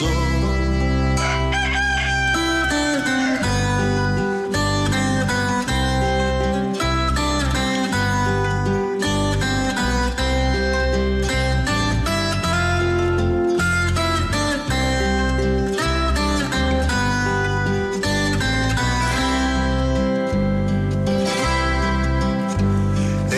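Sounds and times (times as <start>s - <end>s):
lively music track with rhythmic instruments and sustained tones: 0.0s - 23.3s
rooster crowing: 1.2s - 4.4s.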